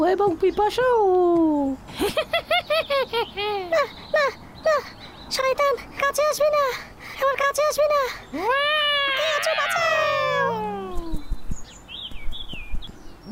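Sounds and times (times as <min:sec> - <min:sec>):
speech: 0:00.1 - 0:09.9
cat meowing: 0:09.1 - 0:11.2.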